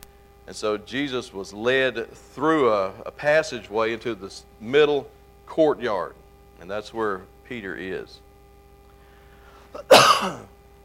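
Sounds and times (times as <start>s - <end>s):
speech: 0.5s - 8.2s, 9.7s - 10.5s
loud harsh cough: 9.7s - 10.5s
throat clearing: 9.7s - 10.5s.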